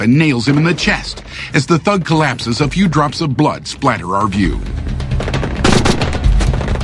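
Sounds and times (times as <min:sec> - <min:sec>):
speech: 0:00.0 - 0:04.8
automatic weapons firing in a shootout around parked cars: 0:05.2 - 0:06.8.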